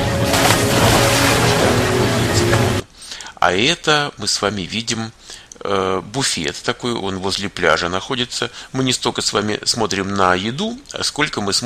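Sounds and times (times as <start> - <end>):
water rushing down a children's pool slide: 0.2 - 2.7
speech: 3.4 - 11.6.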